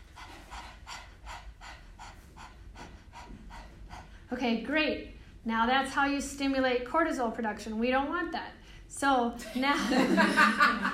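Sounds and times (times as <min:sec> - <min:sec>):
person panting rapidly with tongue out doing breath of fire yoga exercise: 0:00.0 - 0:04.4
speech: 0:04.3 - 0:10.9
laughter: 0:09.7 - 0:10.9.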